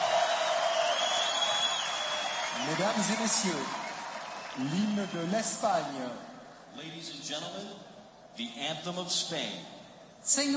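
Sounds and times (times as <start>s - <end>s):
large stadium crowd clapping: 0.0s - 6.2s
speech: 2.6s - 3.8s, 4.6s - 10.5s.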